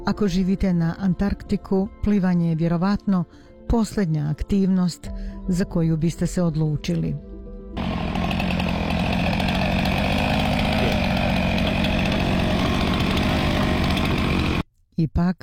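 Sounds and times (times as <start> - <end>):
speech: 0.0 - 7.9, 15.0 - 15.4
saws and excavator cutting ice to make a swimming pool at an Antarctic research station: 7.8 - 14.6.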